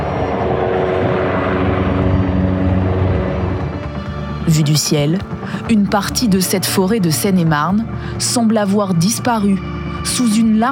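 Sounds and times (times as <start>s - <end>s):
water-bombing helicopter rotor thrum overhead: 0.0s - 7.6s
speech: 4.5s - 10.7s.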